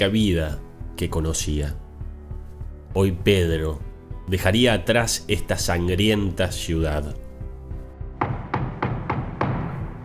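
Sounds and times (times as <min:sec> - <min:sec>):
speech: 0:00.0 - 0:01.8, 0:02.9 - 0:07.2
door shaking and thudding under heavy blows, rattling in its frame: 0:08.2 - 0:10.0.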